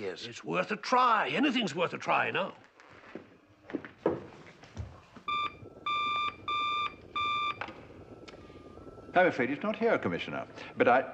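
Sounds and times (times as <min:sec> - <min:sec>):
speech: 0:00.0 - 0:03.3, 0:09.2 - 0:11.1
telephone ringing with an electronic buzzy tone: 0:05.2 - 0:10.8.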